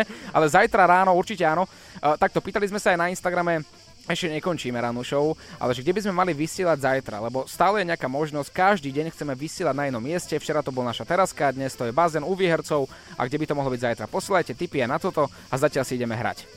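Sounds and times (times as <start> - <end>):
crickets chirping: 0.0 - 16.5
speech: 0.0 - 16.5.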